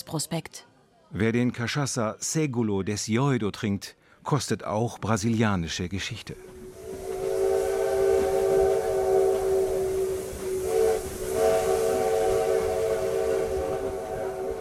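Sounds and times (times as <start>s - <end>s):
speech: 0.1s - 6.6s
restored old steam train whistle blowing in Brazil: 6.5s - 14.6s.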